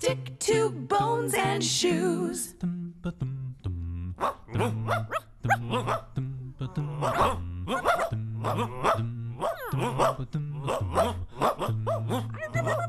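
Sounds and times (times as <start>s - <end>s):
speech: 0.0s - 6.1s, 6.8s - 7.4s, 8.5s - 9.0s
steady low bass line: 2.6s - 12.8s
dog barking: 4.2s - 6.1s, 7.0s - 12.8s.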